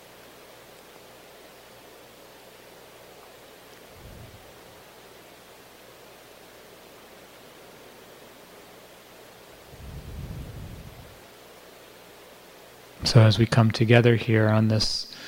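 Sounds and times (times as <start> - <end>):
steady rain: 0.0 - 14.2
low rumbling swells: 3.9 - 4.8, 9.6 - 11.2
speech: 13.1 - 15.2.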